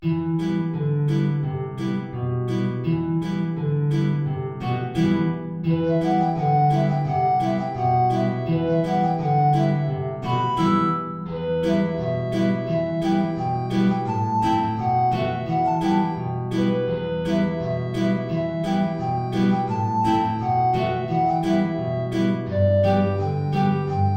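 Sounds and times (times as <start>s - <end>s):
guitar: 0.0s - 24.1s
alto flute playing high notes: 5.7s - 24.1s.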